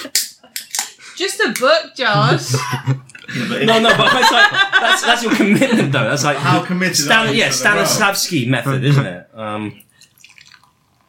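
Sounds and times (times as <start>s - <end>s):
speech: 1.2s - 9.8s
laughter: 2.2s - 9.2s
liquid pouring into a glass: 9.8s - 11.0s.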